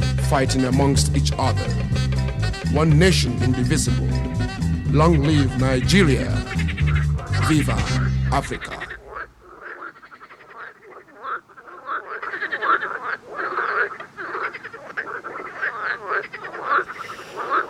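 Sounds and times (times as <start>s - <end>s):
speech: 0.3s - 6.5s, 7.5s - 8.9s
dense chorus of frogs croaking: 4.0s - 17.6s.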